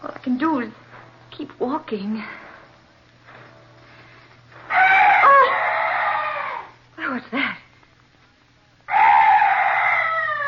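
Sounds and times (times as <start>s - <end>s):
speech: 0.2s - 0.8s, 1.4s - 2.4s, 7.1s - 7.6s
strange night bird harsh drawn-out cry: 4.7s - 6.8s, 8.9s - 10.4s.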